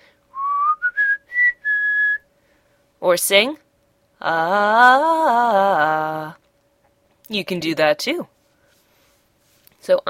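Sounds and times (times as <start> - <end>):
person whistling a short melody: 0.3 - 2.2
speech: 3.0 - 3.6, 4.2 - 6.4, 7.3 - 8.3, 9.8 - 10.0.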